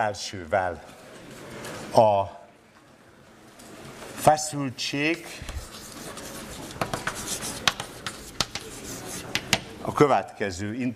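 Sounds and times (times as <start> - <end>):
speech: 0.0 - 1.0, 1.9 - 2.4, 4.2 - 5.6, 9.9 - 10.9
writing strokes scratching during a university lecture: 5.4 - 9.7.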